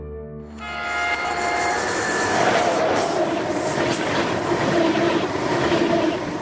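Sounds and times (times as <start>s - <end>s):
ICE high-speed train horn blast: 0.5s - 3.2s
ICE high-speed train and its wheels rumbling on the rails: 0.5s - 6.4s.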